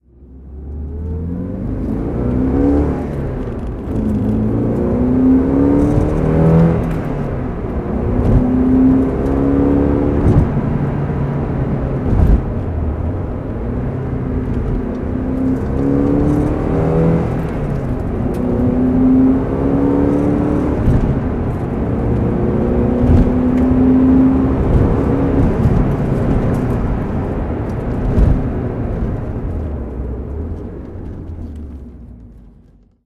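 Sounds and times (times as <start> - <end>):
Porsche 968 CS driving: 0.0 - 33.0.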